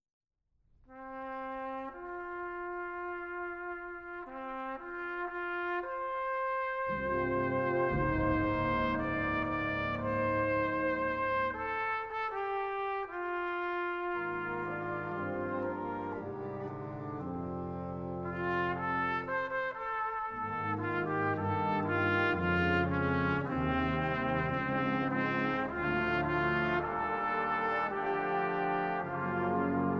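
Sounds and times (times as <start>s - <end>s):
trumpet playing folk music: 0.8s - 29.9s
wind ensemble playing folk music: 0.9s - 29.9s.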